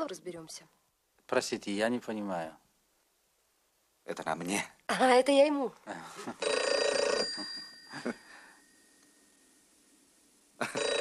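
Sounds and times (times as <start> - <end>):
speech: 0.0 - 2.6, 4.1 - 6.8, 7.4 - 8.2, 10.6 - 10.9
telephone bell ringing in metallic trills: 6.4 - 9.0, 10.6 - 11.0.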